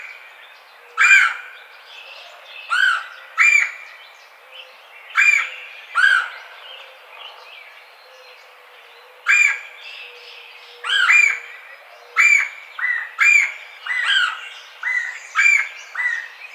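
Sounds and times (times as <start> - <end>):
red-bellied woodpecker calling rolling raspy kwirr notes: 1.0 - 1.5, 2.7 - 3.8, 5.2 - 6.4, 10.8 - 11.5, 12.2 - 16.3.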